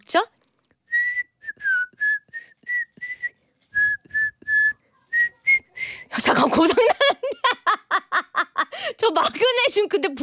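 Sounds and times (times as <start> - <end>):
speech: 0.1 - 0.4, 6.2 - 7.4, 9.0 - 10.2
person whistling a simple bouncy children's melody: 0.9 - 6.1
faint breathy sounds between phrases: 2.3 - 3.5, 5.7 - 6.2, 8.7 - 9.0
laughter: 6.5 - 8.9.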